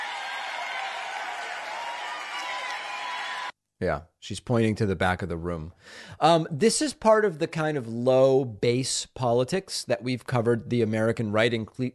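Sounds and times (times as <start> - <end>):
large crowd cheering: 0.0 - 3.5
speech: 3.8 - 11.9.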